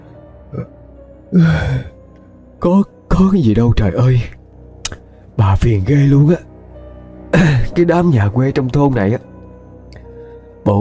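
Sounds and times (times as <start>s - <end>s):
speech: 0.5s - 1.9s, 2.6s - 4.4s, 5.4s - 6.5s, 7.3s - 9.3s
person yawning: 1.3s - 2.0s.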